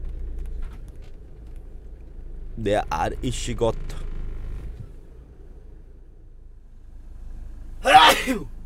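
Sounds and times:
low engine-like rumble: 0.0s - 8.6s
speech: 2.6s - 4.0s, 8.2s - 8.6s
person sneezing: 7.8s - 8.5s.

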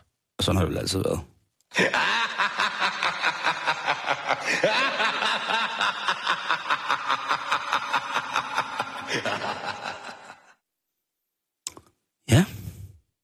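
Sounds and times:
speech: 0.4s - 2.1s
clown mascot's classic laugh: 1.8s - 10.6s.

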